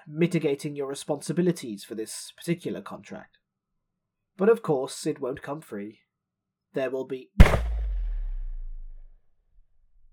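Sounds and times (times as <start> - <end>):
speech: 0.1 - 3.4, 4.4 - 6.0, 6.7 - 7.6
single loud gunshot with deep booming echo: 7.4 - 9.1.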